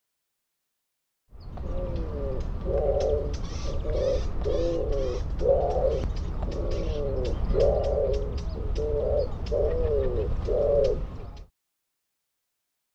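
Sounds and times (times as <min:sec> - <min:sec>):
bird giving low hollow cooing phrases: 0:01.6 - 0:11.5.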